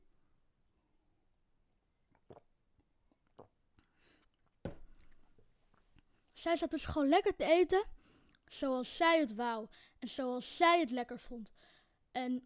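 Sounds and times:
soft wet mouth clicks: 2.1 - 3.9
slurping sip and swallow of iced tea: 2.1 - 5.2
speech: 6.4 - 12.4.

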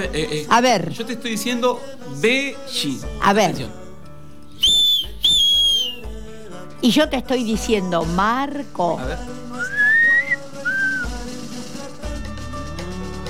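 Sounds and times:
speech: 0.0 - 3.8, 6.8 - 9.8
person whistling: 4.6 - 6.1, 9.6 - 11.2.

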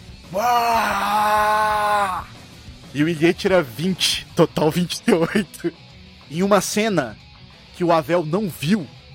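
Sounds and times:
speech: 0.3 - 1.5, 3.0 - 7.2, 7.8 - 9.0
creature screaming inside a cathedral: 0.3 - 2.3.

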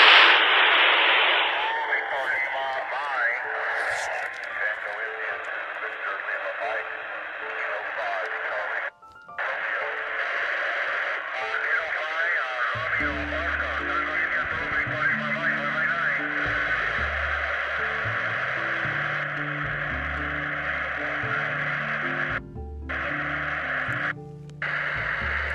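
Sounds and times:
steady hiss and crackling static: 0.0 - 25.5
tinny band-limited audio from a UV-82 handheld ham radio transceiver: 0.0 - 25.5
voices coming through the small speaker of a handheld ham radio: 1.6 - 22.3
low thumping rhythm: 12.8 - 25.5.

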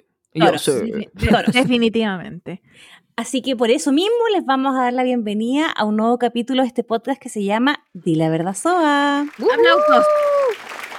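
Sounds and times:
speech: 0.4 - 10.5
crowd applause: 9.2 - 10.9
loud drawn-out vocal cheer: 9.4 - 10.7.

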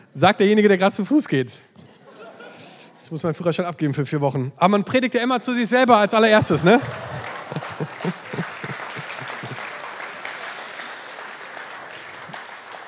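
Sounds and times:
speech: 0.2 - 1.7, 3.1 - 7.1
laughter: 1.8 - 3.1, 6.3 - 11.1
audience clapping: 6.2 - 12.8
voices cheering: 6.6 - 12.8.

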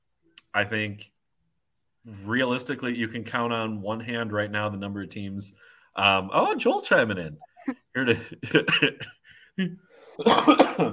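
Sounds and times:
speech: 0.5 - 1.1, 2.0 - 10.9
person coughing: 8.6 - 10.9.

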